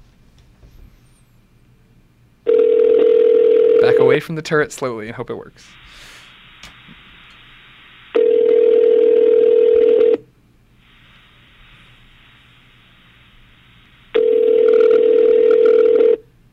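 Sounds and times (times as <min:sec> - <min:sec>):
telephone ring tones from a video game phone call: 0:02.5 - 0:04.1, 0:08.2 - 0:10.2, 0:14.2 - 0:16.3
speech: 0:04.2 - 0:06.0.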